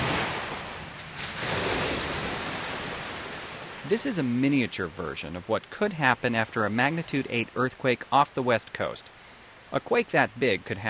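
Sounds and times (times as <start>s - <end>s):
wave machine wave crashing in a test pool: 0.0s - 4.3s
speech: 3.9s - 10.8s.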